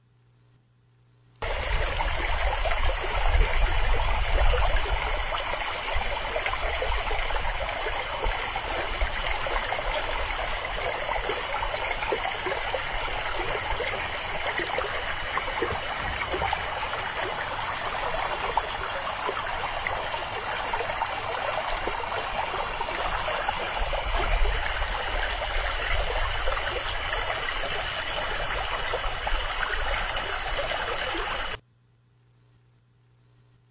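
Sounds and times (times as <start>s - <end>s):
river stream flowing: 1.4s - 31.6s.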